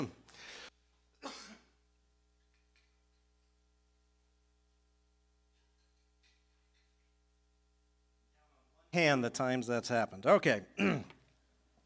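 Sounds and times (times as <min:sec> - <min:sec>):
coughing and throat clearing from a tickle in the throat: 0:01.2 - 0:01.8, 0:10.7 - 0:11.3
speech: 0:09.0 - 0:11.2.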